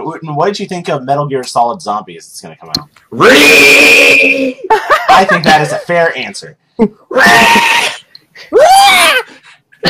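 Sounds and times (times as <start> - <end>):
speech: 0.0 - 9.8
person letting out a victory screech: 3.2 - 4.7, 7.1 - 9.3.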